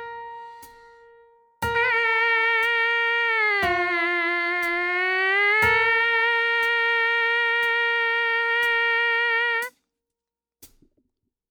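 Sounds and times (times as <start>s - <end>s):
MPC sampler buzz: 1.6s - 9.7s
trumpet: 1.6s - 9.7s.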